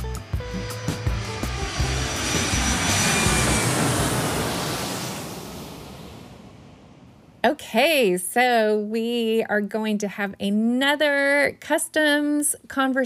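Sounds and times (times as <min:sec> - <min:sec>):
airplane taking off with a jet-engine roar: 0:00.0 - 0:07.4
speech: 0:07.4 - 0:13.0.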